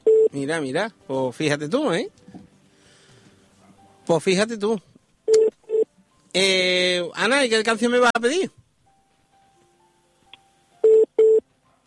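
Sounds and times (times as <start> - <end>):
telephone line tones on an incoming call: 0.0 - 0.4, 5.3 - 5.9, 10.8 - 11.4
speech: 0.4 - 2.2, 4.1 - 4.9, 6.3 - 8.6.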